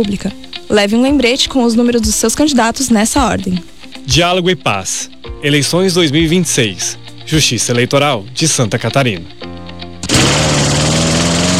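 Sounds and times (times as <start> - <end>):
speech: 0.0 - 9.5
motorized garden equipment engine, brushcutter or chainsaw, buzzing: 10.0 - 11.5.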